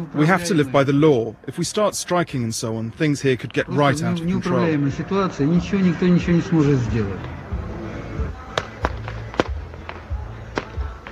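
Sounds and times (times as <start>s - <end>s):
outdoor crowd murmur at street protest: 0.0s - 1.6s, 3.6s - 11.1s
speech: 0.0s - 7.4s
small fireworks bangs over street protest: 8.2s - 11.1s.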